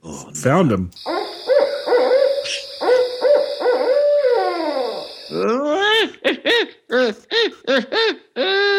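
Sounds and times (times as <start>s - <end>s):
speech: 0.3s - 1.1s, 5.3s - 8.6s
owl hooting: 1.0s - 5.4s.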